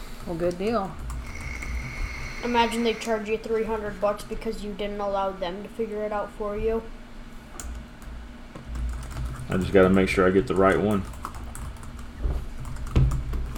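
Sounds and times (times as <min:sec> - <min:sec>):
speech: 0:00.3 - 0:01.1, 0:02.4 - 0:07.0, 0:09.5 - 0:11.2
typing on a computer keyboard: 0:08.7 - 0:13.5.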